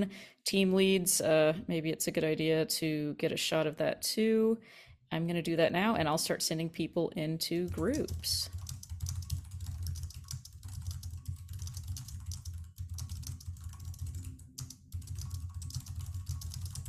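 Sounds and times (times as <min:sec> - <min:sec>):
speech: 0:00.0 - 0:08.6
typing on a computer keyboard: 0:07.7 - 0:16.8.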